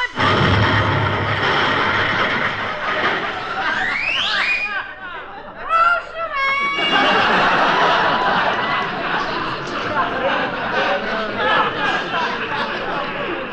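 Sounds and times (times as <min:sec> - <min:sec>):
cannon firing a man into the air, comedy sound effect: 0:00.2 - 0:03.7
laughter: 0:02.4 - 0:13.5
wavering whistle-like tones of a comedy sound effect: 0:03.7 - 0:04.8.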